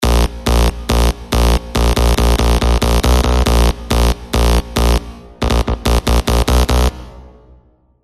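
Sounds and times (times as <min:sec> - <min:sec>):
creaking bass synth: 0:00.0 - 0:07.1.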